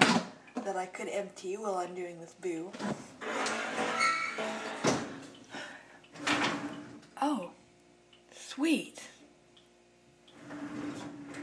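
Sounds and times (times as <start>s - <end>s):
faint hum: 0.0s - 11.4s
speech: 0.7s - 4.8s
squeaky rattling dishwasher racks rolling out: 3.2s - 5.4s, 6.2s - 7.0s, 10.4s - 11.4s
dishwasher door dropping open: 4.3s - 5.2s.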